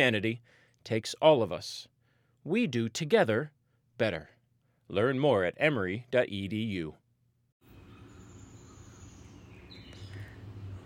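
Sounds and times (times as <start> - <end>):
speech: 0.0 - 4.3, 4.9 - 7.0
many birds singing outdoors: 7.8 - 10.8.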